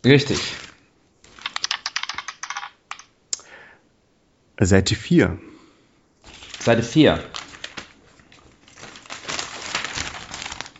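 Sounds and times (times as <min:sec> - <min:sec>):
speech: 0:00.0 - 0:00.6, 0:04.6 - 0:05.5, 0:06.6 - 0:07.4
dice rattling and clattering across a hard surface: 0:00.3 - 0:03.1.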